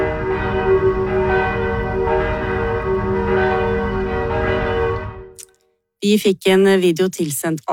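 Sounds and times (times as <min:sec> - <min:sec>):
church bells ringing at night: 0:00.0 - 0:05.4
speech: 0:06.0 - 0:07.7.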